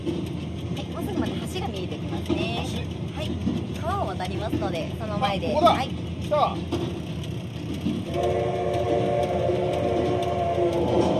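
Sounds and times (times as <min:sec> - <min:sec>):
train rumbling heavily across a railway bridge: 0:00.0 - 0:11.1
speech: 0:04.1 - 0:07.0, 0:07.8 - 0:09.6
steady metallic droning tone: 0:07.6 - 0:11.1.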